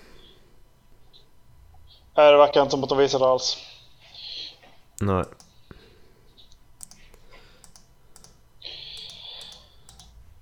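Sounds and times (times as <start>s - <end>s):
faint hum: 0.0s - 10.4s
speech: 2.2s - 3.7s, 5.0s - 5.4s
sharp clicks: 5.2s - 5.7s, 6.5s - 10.2s.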